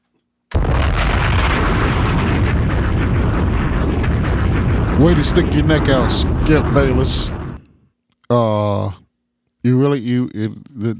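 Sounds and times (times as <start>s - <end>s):
bomb explosion sound effect: 0.5s - 7.6s
speech: 5.0s - 7.4s, 8.3s - 9.0s, 9.6s - 10.9s.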